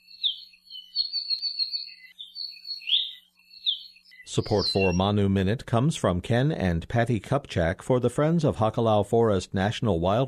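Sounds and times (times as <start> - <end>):
bird song with trills and chirps: 0.0 - 5.2
speech: 4.4 - 10.2.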